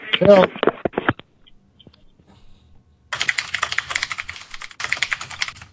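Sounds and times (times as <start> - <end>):
speech: 0.2 - 0.6
typing on a computer keyboard: 3.1 - 5.7.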